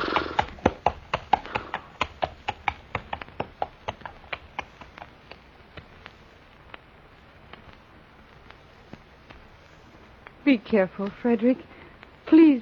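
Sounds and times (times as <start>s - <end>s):
horse hooves clip-clopping at a walking pace as it is led to the stable: 0.0s - 12.4s
speech: 10.5s - 11.8s.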